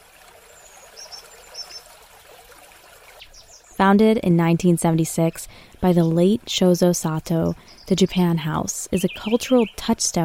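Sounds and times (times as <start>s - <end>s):
water trickling into a garden water basin: 0.0s - 3.8s
speech: 3.8s - 10.2s.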